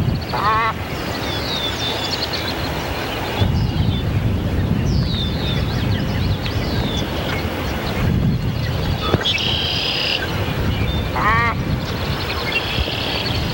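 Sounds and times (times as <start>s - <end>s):
glossy ibis call: 0.1s - 4.0s, 4.9s - 13.3s.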